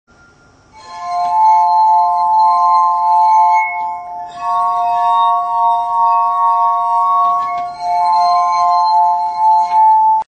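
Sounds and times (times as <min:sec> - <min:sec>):
short glass harp sample: 0:00.1 - 0:10.2.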